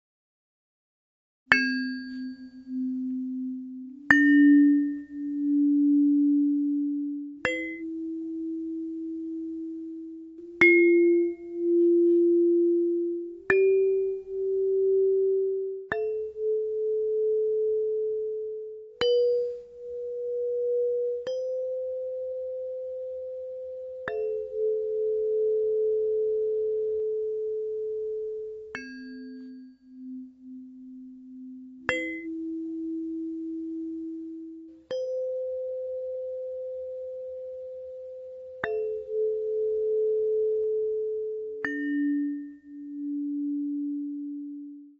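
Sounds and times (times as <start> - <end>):
crystal chakra tuning forks ringing: 1.5 - 44.9.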